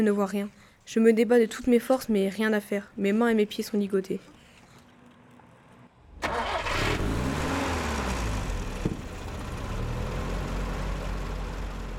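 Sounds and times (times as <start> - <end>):
speech: 0.0 - 4.4
vehicle engine cranking, starting and rumbling: 6.0 - 11.9.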